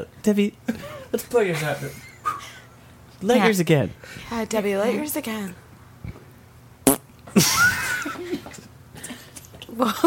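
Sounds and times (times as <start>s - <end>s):
speech: 0.0s - 2.1s, 3.2s - 5.6s, 7.4s - 7.8s, 9.8s - 10.0s
fart: 6.8s - 7.1s.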